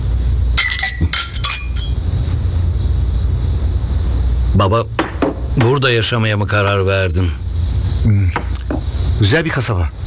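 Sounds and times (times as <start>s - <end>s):
low steady hum: 0.0s - 10.0s
glasses clinking in a toast: 0.6s - 2.1s, 5.0s - 6.2s, 8.4s - 9.1s
speech: 4.6s - 5.0s, 5.6s - 7.4s, 9.2s - 10.0s.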